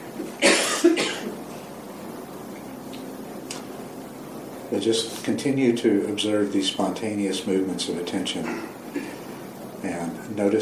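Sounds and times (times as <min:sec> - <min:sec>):
person coughing: 0:00.4 - 0:01.3, 0:08.4 - 0:09.2
speech: 0:04.7 - 0:08.8, 0:10.4 - 0:10.5.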